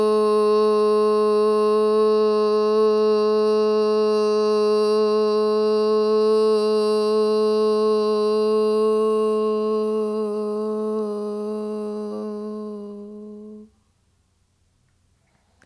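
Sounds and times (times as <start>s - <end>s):
sustained low oo vowel chanted on exhale during relaxation breathing exercise: 0.0s - 13.8s.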